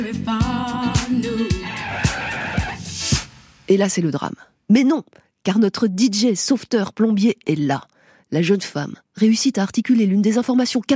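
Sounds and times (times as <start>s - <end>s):
speech: 0.0s - 0.5s, 3.7s - 10.9s
car tires screeching in a long skid: 1.6s - 2.9s.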